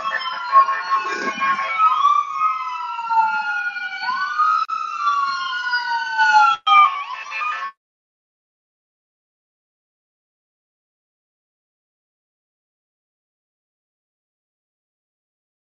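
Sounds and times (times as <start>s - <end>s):
emergency vehicle sirens passing outside: 0.0s - 7.8s.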